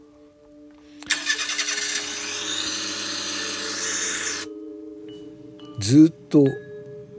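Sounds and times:
car engine cranking, starting and idling: 1.0s - 4.5s
speech: 5.8s - 6.7s.

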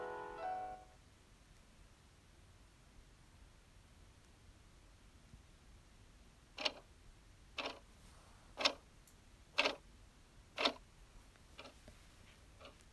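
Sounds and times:
clock ticking: 6.6s - 6.8s, 7.6s - 7.8s, 8.6s - 8.8s, 9.6s - 9.8s, 10.6s - 10.8s, 11.6s - 11.8s, 12.6s - 12.8s.

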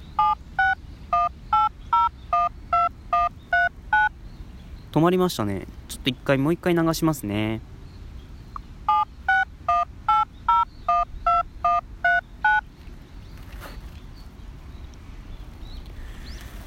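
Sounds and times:
short electronic data-transmission tones that open a web link on a phone: 0.0s - 4.1s, 8.9s - 12.7s
low hiss: 0.0s - 16.6s
speech: 4.9s - 7.7s.

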